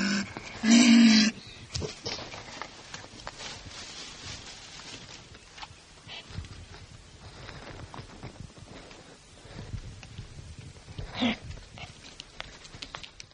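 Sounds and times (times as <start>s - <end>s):
marten giving a loud buzzy harmonic cry: 0.0s - 1.4s
faint rustling: 1.8s - 13.3s
quiet clicks: 10.9s - 13.3s.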